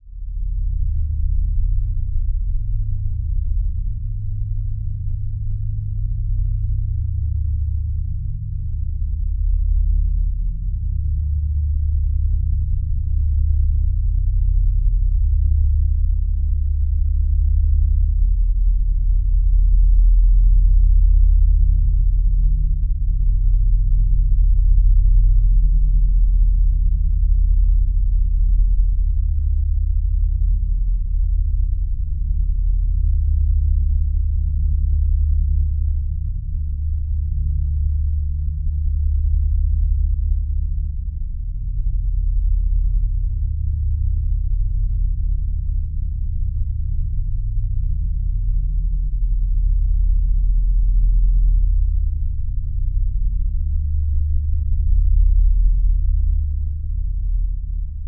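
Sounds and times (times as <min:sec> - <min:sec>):
deep dark bass drone tone: 0:00.0 - 0:58.0.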